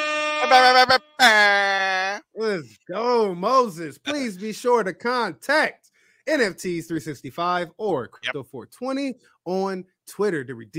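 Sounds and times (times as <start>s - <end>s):
air horn blaring: 0.0s - 1.2s
person shouting: 0.4s - 2.3s
speech: 0.5s - 10.7s.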